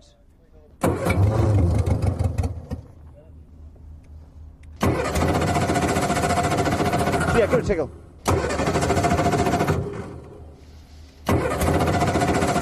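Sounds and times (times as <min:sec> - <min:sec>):
engine cranking without catching: 0:00.8 - 0:03.0, 0:04.7 - 0:10.5, 0:11.1 - 0:12.6
speech: 0:07.4 - 0:08.0.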